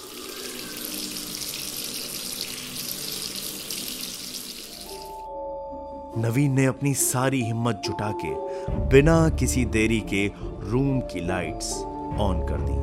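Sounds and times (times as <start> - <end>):
washroom tap at full force gushing into a sink: 0.0 - 5.2
speech: 6.2 - 12.8.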